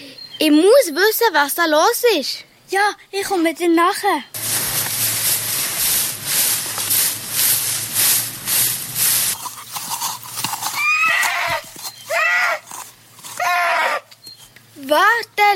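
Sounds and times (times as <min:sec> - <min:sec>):
speech: 0:00.4 - 0:04.4
rapid rhythmic broadband noise: 0:04.4 - 0:10.6
horse whinnying in shrill wavering calls: 0:10.5 - 0:14.1.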